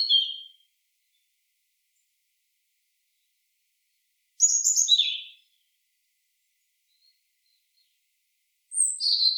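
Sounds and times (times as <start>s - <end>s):
European robin singing high thin warbled phrases: 0.0s - 0.6s, 4.4s - 5.5s, 8.7s - 9.3s.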